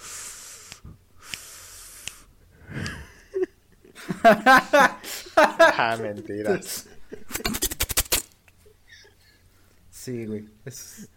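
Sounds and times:
voice imitating decompressing air hiss of a video game enemy: 0.0 - 2.3
wheezy exhale: 0.0 - 3.0
laughter: 2.8 - 7.6
speech: 4.2 - 7.5, 10.1 - 11.1.

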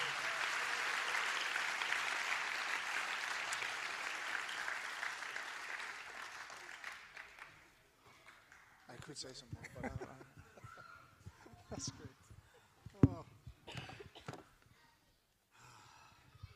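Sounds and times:
crowd applauding a guest speaker: 0.0 - 9.3
speech: 9.1 - 10.2, 11.8 - 12.1
laughter: 9.6 - 11.5.

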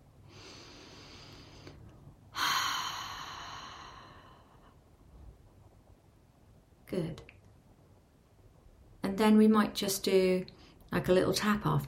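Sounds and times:
slow breath in through the nose and out through the mouth: 0.2 - 5.0
speech: 6.9 - 7.2, 9.1 - 11.8.

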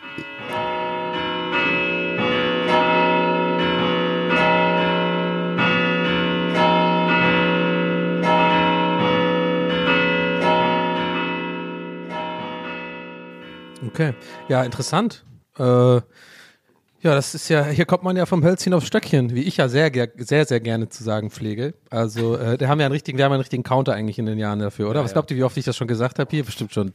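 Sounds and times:
church bells ringing: 0.0 - 15.2
speech: 14.0 - 16.4, 17.0 - 26.9.

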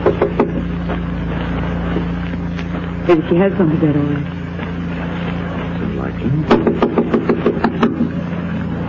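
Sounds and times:
sharp knocks on a door: 0.0 - 0.6, 6.5 - 8.1
steady low hum: 0.0 - 8.8
speech: 3.1 - 4.4, 6.2 - 6.9.

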